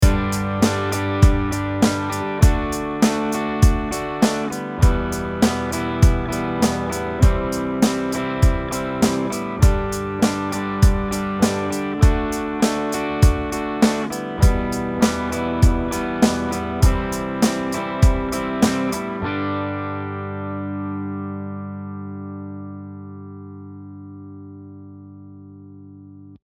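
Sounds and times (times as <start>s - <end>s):
simple drum beat: 0.0s - 19.0s.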